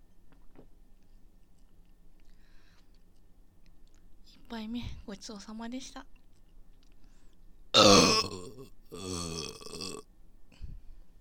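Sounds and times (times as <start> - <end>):
speech: 4.5 - 6.2
drawn-out belch: 7.8 - 10.0
loud burp: 7.8 - 10.1.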